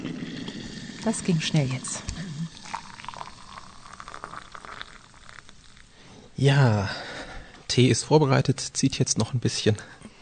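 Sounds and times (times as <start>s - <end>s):
water boiling in a kettle: 0.0s - 6.0s
speech: 1.0s - 2.1s, 6.4s - 7.1s, 7.7s - 10.0s.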